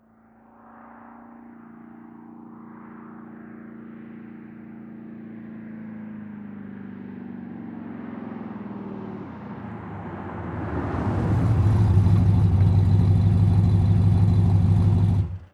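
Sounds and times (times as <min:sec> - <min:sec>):
muscle car engine idling then switched off: 0:08.7 - 0:15.5.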